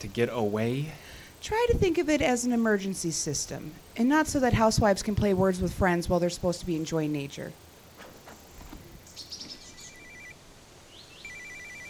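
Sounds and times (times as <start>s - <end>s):
speech: 0.0s - 7.6s
bird chirps: 8.2s - 10.3s, 10.9s - 11.8s
satellite phone ringing: 9.7s - 10.4s, 11.2s - 11.8s.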